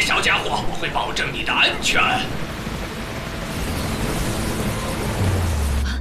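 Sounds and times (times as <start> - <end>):
steady dense rain hiss in a thunderstorm: 0.0 - 5.9
speech: 0.5 - 2.6
deep rumble of thunder: 1.8 - 5.9.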